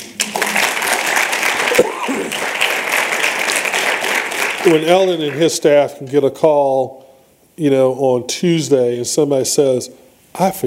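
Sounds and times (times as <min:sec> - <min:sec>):
crowd applauding: 0:00.0 - 0:05.6
speech: 0:04.6 - 0:07.0, 0:07.6 - 0:10.6.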